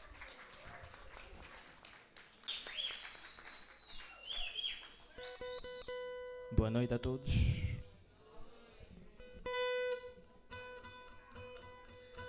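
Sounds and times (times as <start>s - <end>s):
crowd applauding musicians at a live evening event: 0.0s - 5.6s
speech: 6.5s - 7.6s.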